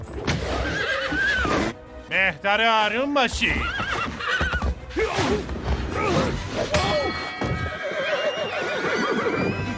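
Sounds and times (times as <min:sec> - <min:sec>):
unruly horse neighing: 0:00.4 - 0:01.7, 0:03.5 - 0:05.3, 0:07.1 - 0:09.7
speech: 0:02.2 - 0:03.9, 0:04.9 - 0:07.0.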